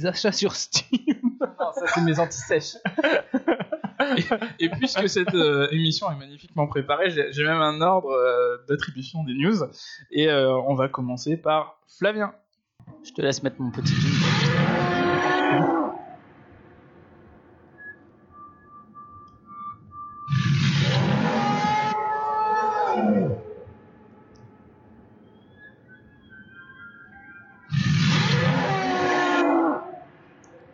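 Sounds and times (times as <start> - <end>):
speech: 0.0 - 3.4, 4.0 - 12.4, 13.0 - 14.4
laughter: 0.8 - 5.8
leviathan creature call, deep whale-like moan: 14.6 - 16.2, 21.0 - 25.5, 28.3 - 30.1.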